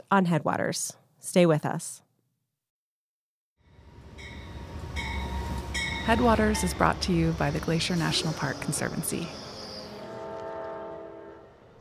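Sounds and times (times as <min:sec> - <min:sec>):
speech: 0:00.1 - 0:02.0, 0:06.1 - 0:09.4
train rumbling past in West Glacier, Montana: 0:03.6 - 0:11.7.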